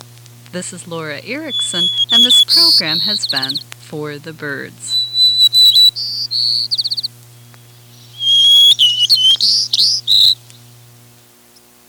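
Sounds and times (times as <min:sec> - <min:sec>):
low steady hum: 0:00.0 - 0:11.8
speech: 0:00.5 - 0:05.0
White-crowned sparrow song: 0:01.4 - 0:03.6, 0:04.8 - 0:11.8.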